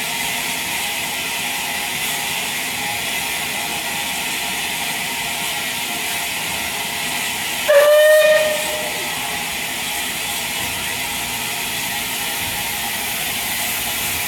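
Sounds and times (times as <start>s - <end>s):
Bulleid Pacific steam locomotive leaving a station with hiss of steam: 0.0s - 14.2s
steam locomotive whistle blast: 7.6s - 9.5s.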